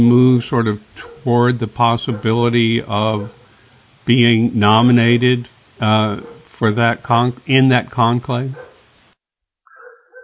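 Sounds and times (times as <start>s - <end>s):
speech: 0.0s - 3.4s, 4.0s - 8.7s
drawn-out tonal dog bark or yelp: 0.6s - 3.8s, 5.8s - 6.6s, 9.7s - 10.2s
dog barking: 1.0s - 1.4s, 2.0s - 2.5s, 3.2s - 3.4s, 6.2s - 6.5s, 8.6s - 8.8s, 9.7s - 10.2s.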